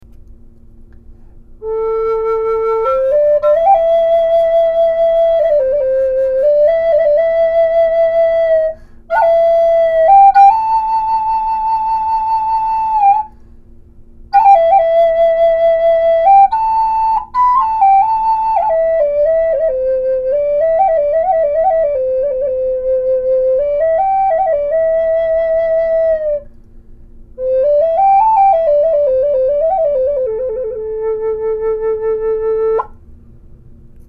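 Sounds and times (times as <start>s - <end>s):
flutes: 1.6s - 13.4s, 14.3s - 26.6s, 27.4s - 33.0s.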